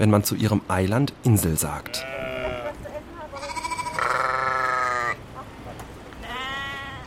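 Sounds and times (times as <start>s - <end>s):
speech: 0.0s - 2.2s
soft outdoor background: 0.0s - 7.0s
sheep bleating on a salt meadow of a North Sea Hallig: 1.8s - 2.8s, 3.4s - 5.2s, 6.2s - 7.0s.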